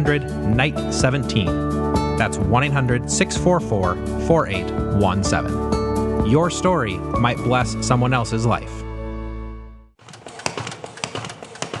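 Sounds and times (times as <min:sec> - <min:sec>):
speech: 0:00.0 - 0:05.7, 0:06.3 - 0:08.9
paper folding machine running: 0:10.0 - 0:11.7.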